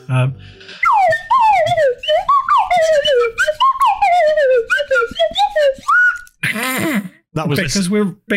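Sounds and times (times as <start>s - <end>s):
speech: 0.1s - 1.2s, 7.4s - 8.3s
whistle playing a short Christmas melody: 0.8s - 6.4s.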